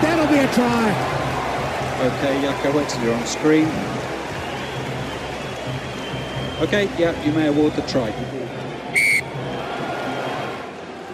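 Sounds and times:
roar of a large stadium crowd: 0.0s - 11.1s
speech: 0.5s - 1.2s, 2.0s - 4.1s, 6.6s - 8.5s
referee's full-time whistle at rugby match: 8.9s - 9.3s.

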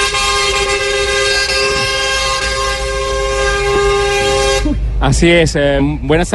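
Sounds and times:
several cargo truck air horns blaring together: 0.0s - 5.0s
low traffic rumble: 0.0s - 6.3s
speech: 5.0s - 6.3s.

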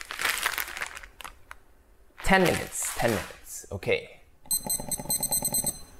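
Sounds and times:
500 gram plastic food packet crinkling as it is handled: 0.0s - 1.6s, 2.2s - 3.3s
speech: 2.3s - 5.0s.

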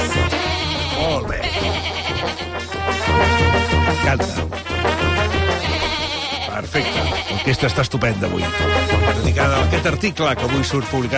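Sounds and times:
goat bleating: 0.0s - 3.3s, 5.4s - 7.9s
dense continuous sound: 0.0s - 11.1s
speech: 4.1s - 4.4s, 7.5s - 11.1s.

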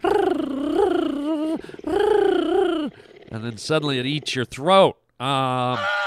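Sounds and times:
cheetah high-pitched purr: 0.0s - 4.6s
speech: 3.4s - 6.0s.

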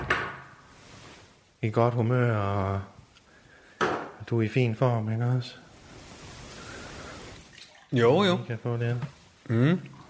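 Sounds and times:
speech: 1.6s - 3.0s, 4.3s - 5.6s, 7.9s - 10.0s
Danish sparkling water pouring with a soft fizzing hiss: 5.5s - 9.4s.

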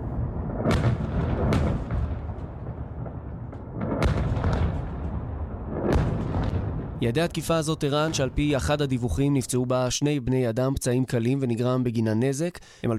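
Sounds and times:
heavy explosions from a missile attack: 0.0s - 9.2s
speech: 7.0s - 12.9s.

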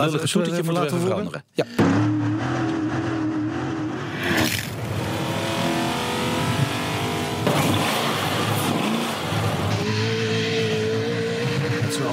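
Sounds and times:
speech: 0.0s - 2.1s
V8 rally car engine revving: 1.7s - 12.1s.

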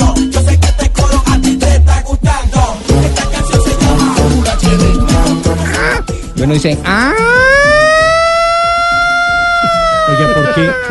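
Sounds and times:
rhythmic low sounds: 0.0s - 10.9s
civil defense evacuation siren wailing: 3.3s - 10.9s
speech: 6.5s - 7.2s, 10.2s - 10.9s.

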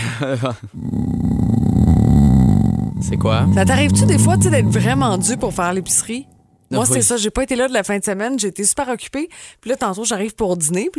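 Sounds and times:
speech: 0.2s - 1.4s, 3.0s - 10.9s
dog's low rough growl: 0.7s - 7.0s.

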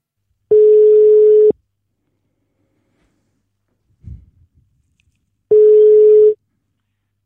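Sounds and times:
telephone ringing tone while placing a call: 0.5s - 1.6s, 5.5s - 6.4s.

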